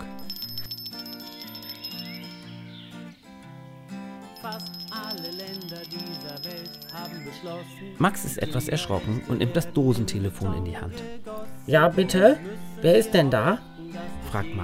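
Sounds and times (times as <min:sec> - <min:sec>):
bell ringing on a string bell-pull: 0:00.0 - 0:02.4, 0:04.4 - 0:07.8
speech: 0:04.5 - 0:13.7, 0:14.3 - 0:14.6.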